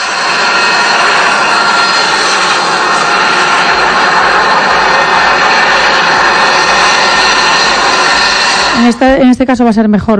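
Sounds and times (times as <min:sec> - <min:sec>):
military jet airplane roaring as it comes in to land: 0:00.0 - 0:10.0
speech: 0:08.8 - 0:10.1.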